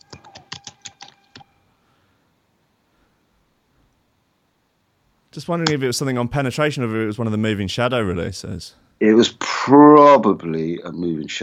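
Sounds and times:
typing on a computer keyboard: 0:00.0 - 0:01.5
speech: 0:05.3 - 0:11.4.

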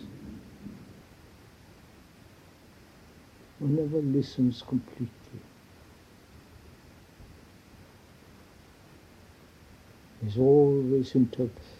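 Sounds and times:
thunder rumbling: 0:00.0 - 0:01.1
faint rain-like hiss: 0:00.0 - 0:11.7
speech: 0:03.6 - 0:05.5, 0:10.2 - 0:11.7.

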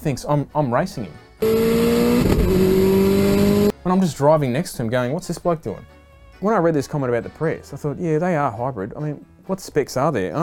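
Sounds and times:
speech: 0:00.0 - 0:03.0, 0:03.8 - 0:10.4
turbocharged car engine revving hard: 0:01.4 - 0:03.7.

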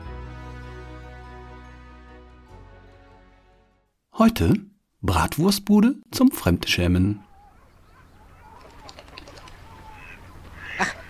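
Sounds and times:
speech: 0:04.2 - 0:07.2
ducks or similar waterfowl calling: 0:07.3 - 0:11.0
duck wings flapping: 0:07.5 - 0:11.0.

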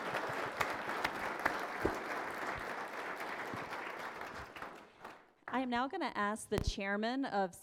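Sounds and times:
audience applauding for a panel: 0:00.0 - 0:05.3
speech: 0:05.6 - 0:07.6.

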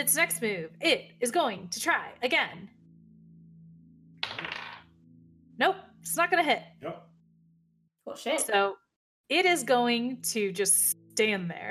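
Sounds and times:
speech: 0:00.0 - 0:02.8, 0:05.6 - 0:07.1, 0:08.1 - 0:11.6
dice clattering across a hard table: 0:04.2 - 0:04.8.

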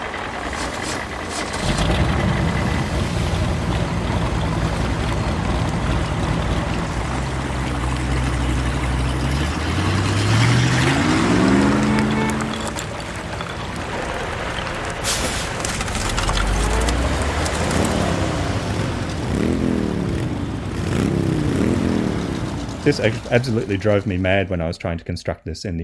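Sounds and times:
layered motor vehicle engines droning and revving: 0:00.0 - 0:24.5
crackling ice-like snaps: 0:00.4 - 0:18.4
speech: 0:22.9 - 0:25.8.

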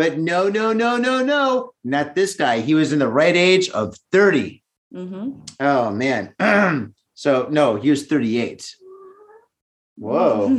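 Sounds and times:
speech: 0:00.0 - 0:08.8, 0:10.0 - 0:10.5
cat meowing: 0:08.8 - 0:09.6.

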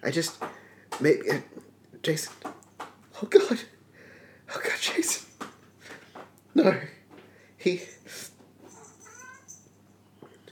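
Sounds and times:
speech: 0:00.0 - 0:02.5, 0:03.2 - 0:03.7, 0:04.5 - 0:05.3, 0:06.6 - 0:07.0, 0:07.6 - 0:08.3
faint hiss: 0:00.0 - 0:10.4
cat meowing: 0:08.8 - 0:09.6.

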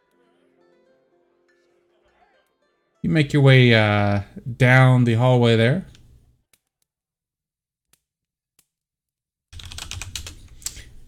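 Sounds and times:
speech: 0:03.0 - 0:05.9
typing on a computer keyboard: 0:09.6 - 0:10.9.

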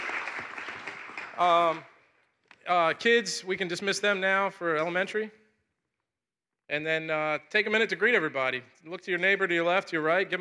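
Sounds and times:
audience applauding for veterans in a large room: 0:00.0 - 0:01.8
speech: 0:01.4 - 0:01.9, 0:02.6 - 0:05.4, 0:06.7 - 0:10.3.

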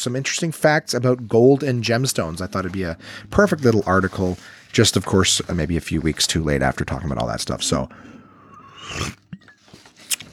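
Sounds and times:
speech: 0:00.0 - 0:08.2, 0:08.8 - 0:09.2
brief breathy hiss: 0:01.7 - 0:09.4
slurping sip from a drink: 0:02.2 - 0:10.3
small mouth clicks: 0:07.9 - 0:09.5.

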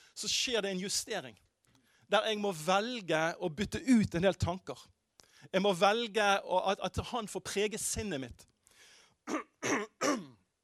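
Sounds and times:
speech: 0:00.2 - 0:01.5, 0:02.1 - 0:08.5, 0:09.3 - 0:10.3
person clearing throat: 0:09.3 - 0:10.4.

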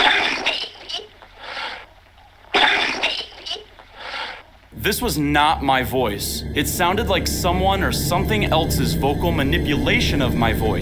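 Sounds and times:
sharp raspy high-pitched coughing: 0:00.0 - 0:01.6, 0:02.5 - 0:03.8
speech: 0:04.8 - 0:10.7.

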